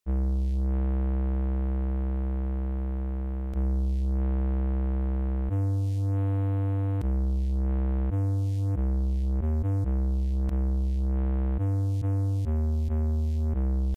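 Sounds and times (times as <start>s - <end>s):
deep bass: 0.0s - 13.9s.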